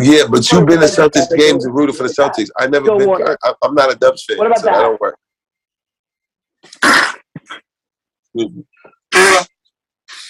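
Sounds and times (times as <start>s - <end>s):
speech: 0.0s - 5.2s, 8.4s - 9.4s
man blowing his nose: 6.7s - 7.4s
sniff: 10.1s - 10.2s.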